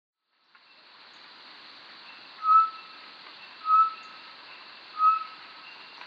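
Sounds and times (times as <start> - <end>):
Batis mixta short-tailed batis giving clear flat whistled notes: 2.4 - 2.9, 3.6 - 4.2, 5.0 - 5.4.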